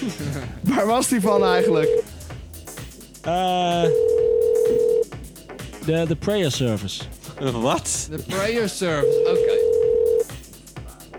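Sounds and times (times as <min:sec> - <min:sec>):
speech: 0:00.0 - 0:02.1, 0:03.2 - 0:04.1, 0:05.8 - 0:09.6
telephone dial tone: 0:04.0 - 0:05.0, 0:09.1 - 0:10.2.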